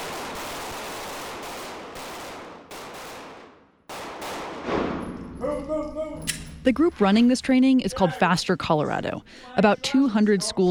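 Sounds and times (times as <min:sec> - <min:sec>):
gunfire in a school-staff shooting drill: 0:00.0 - 0:05.3
speech: 0:06.6 - 0:10.6.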